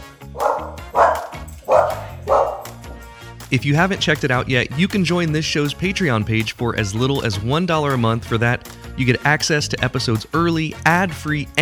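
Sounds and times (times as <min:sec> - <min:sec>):
dog barking on the coast: 0:00.3 - 0:03.0
speech: 0:03.5 - 0:11.6.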